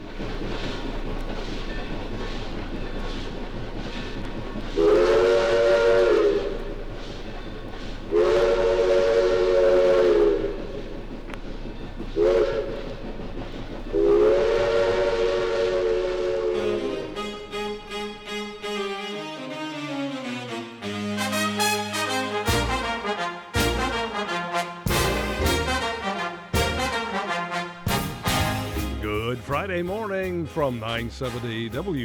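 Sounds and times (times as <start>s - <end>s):
rumble and clatter of a rolling train: 0.0s - 32.0s
speech: 0.2s - 0.7s, 30.6s - 32.0s
steam train whistle: 4.7s - 7.4s, 8.0s - 11.0s, 12.2s - 13.0s, 13.9s - 32.0s.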